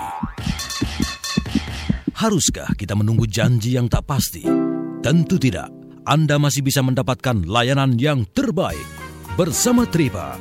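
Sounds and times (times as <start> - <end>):
irregular heartbeat thumps: 0.0 - 4.1
speech: 2.2 - 10.3.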